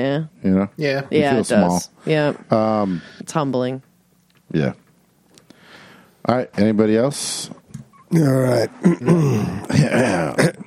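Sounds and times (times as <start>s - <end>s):
speech: 0.0s - 3.9s, 4.5s - 4.8s, 6.2s - 10.6s
person clearing throat: 8.1s - 10.6s.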